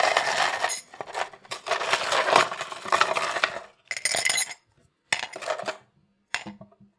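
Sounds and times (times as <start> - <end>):
ice cubes clinking into a cup: 0.0 - 4.6.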